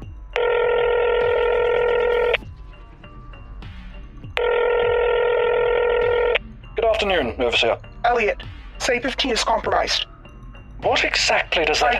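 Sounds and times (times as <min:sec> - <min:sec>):
telephone call ringing out after a number is dialed: 0:00.3 - 0:02.4, 0:04.4 - 0:06.4
speech: 0:07.0 - 0:10.1, 0:10.8 - 0:11.9.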